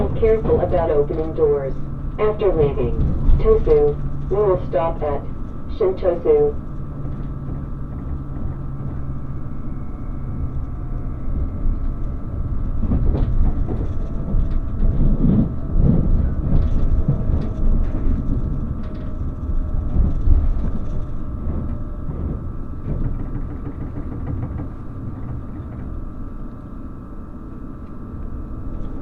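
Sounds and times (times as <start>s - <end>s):
Relay Kamome limited express train running on rails from Hakata towards Tosu, Japan: 0.0s - 28.9s
speech: 0.2s - 6.6s.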